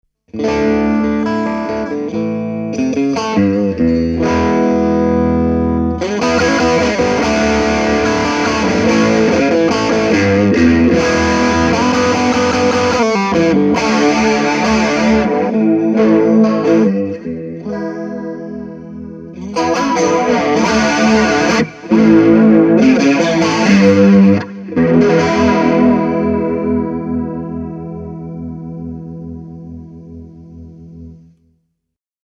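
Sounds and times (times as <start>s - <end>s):
amp effects: 0.3s - 31.4s.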